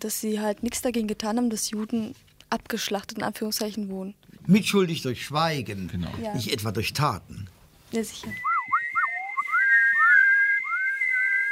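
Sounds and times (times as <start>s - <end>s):
speech: 0.0s - 8.5s
shrill human whistling: 8.2s - 11.5s.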